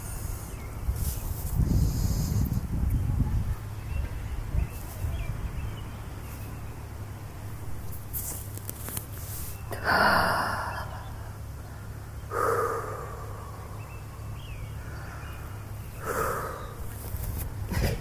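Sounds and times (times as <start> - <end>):
faint birds: 0.0 - 17.9
steady traffic hum: 0.0 - 17.9
person inhaling and exhaling while taking hits on an outdoor bench: 0.2 - 2.6, 9.2 - 14.0, 14.7 - 17.9.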